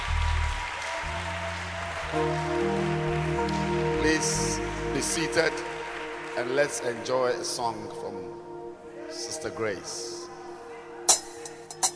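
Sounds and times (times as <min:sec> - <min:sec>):
crowd clapping: 0:00.0 - 0:08.1
organ or keyboard chords: 0:01.1 - 0:11.0
speech: 0:02.1 - 0:02.4, 0:04.2 - 0:05.7, 0:06.4 - 0:08.4, 0:09.1 - 0:10.2.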